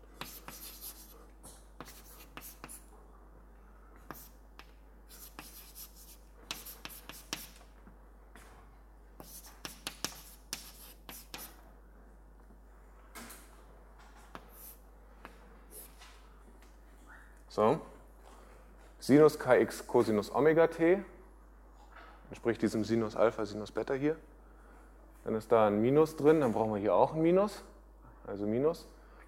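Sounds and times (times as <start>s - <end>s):
handwritten strokes working out equations: 0.2s - 1.2s, 1.8s - 2.9s, 4.0s - 4.4s, 5.1s - 7.6s, 9.2s - 11.6s, 14.4s - 14.8s
speech: 17.6s - 17.9s, 19.1s - 21.2s, 22.4s - 24.3s, 25.2s - 27.7s, 28.3s - 29.0s.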